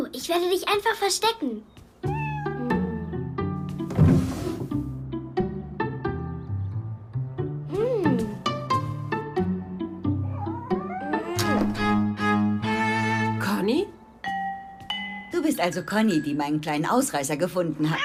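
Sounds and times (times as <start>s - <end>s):
speech: 0.2s - 1.8s, 15.6s - 18.0s
cat meowing: 2.1s - 3.1s, 10.2s - 11.6s, 17.9s - 18.0s
music with plucked and chiming notes: 2.1s - 16.5s.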